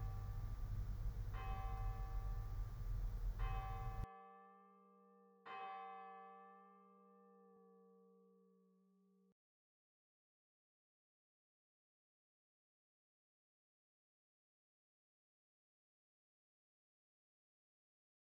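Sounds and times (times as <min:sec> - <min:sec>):
bell struck in a guided prayer: 0:00.0 - 0:04.1
noise: 0:00.0 - 0:08.8.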